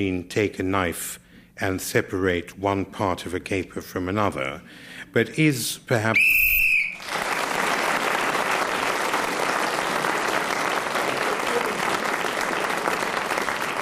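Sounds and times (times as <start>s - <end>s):
speech: 0.0s - 6.6s
shrill whistle blast ending a contestant's turn in a panel game: 6.2s - 7.1s
audience applause: 7.0s - 13.7s.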